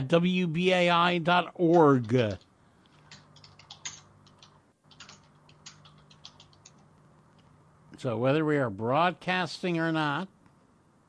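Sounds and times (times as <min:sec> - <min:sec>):
speech: 0:00.0 - 0:02.5, 0:08.0 - 0:10.4
low steady hum: 0:00.0 - 0:11.0
man typing a message on a computer keyboard during a Skype call: 0:02.0 - 0:06.8.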